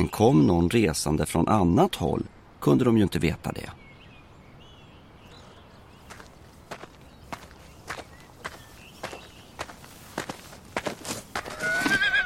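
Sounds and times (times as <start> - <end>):
speech: 0.0 - 3.8
horse hoofbeats clopping on a house veranda: 6.8 - 12.2
horse letting out a loud high whinny: 11.4 - 12.2.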